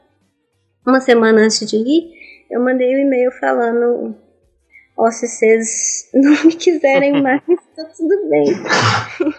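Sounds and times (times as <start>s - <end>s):
speech: 0.8s - 4.2s, 5.0s - 9.3s
laughter: 6.3s - 7.6s, 8.5s - 9.3s
person sneezing: 8.5s - 9.3s.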